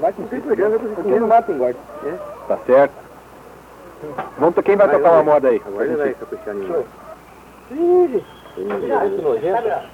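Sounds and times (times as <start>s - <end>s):
speech: 0.0s - 3.0s, 4.0s - 7.0s, 7.7s - 9.9s
overlapping calls or faint voices: 0.0s - 9.9s
bird hooting call outdoors, possibly rufous hornero: 1.2s - 9.9s.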